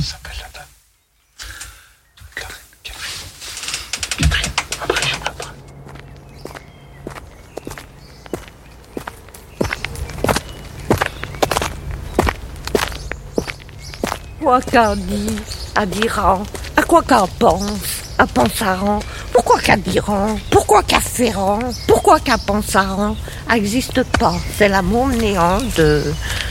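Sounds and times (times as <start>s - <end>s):
speech: 0.0s - 0.3s, 14.4s - 26.3s
footsteps walking: 2.2s - 26.5s
low hum: 4.0s - 26.5s.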